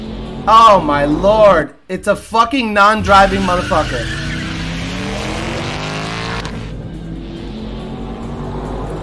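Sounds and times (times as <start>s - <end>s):
speech: 0.4s - 4.3s
Ford Mustang California Special engine roaring during manual gear shift: 3.0s - 9.0s.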